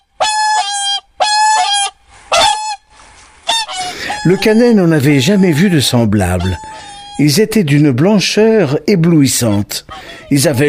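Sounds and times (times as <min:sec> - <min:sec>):
white swans calling with trumpeting honks: 0:00.0 - 0:07.5
speech: 0:04.2 - 0:10.6.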